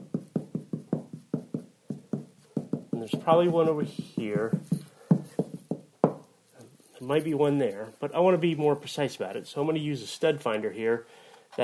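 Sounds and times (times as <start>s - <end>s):
dull hollow knocks on a wall to find a stud: 0.0s - 6.3s
speech: 3.0s - 4.7s, 7.0s - 11.6s.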